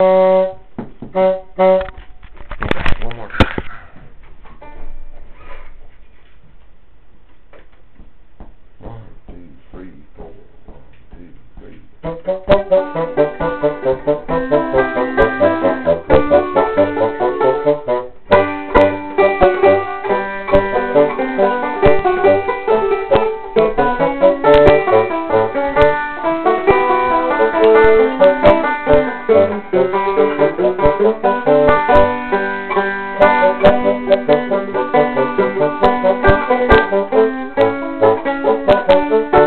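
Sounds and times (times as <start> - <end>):
banjo playing a hornpipe in a duet: 0.0 - 2.1, 12.0 - 39.4.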